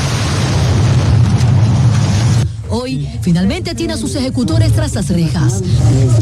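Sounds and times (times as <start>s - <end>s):
car bomb explosion outside a shopping mall in Guayaquil, Ecuador: 0.0s - 2.6s
speech: 3.2s - 6.2s.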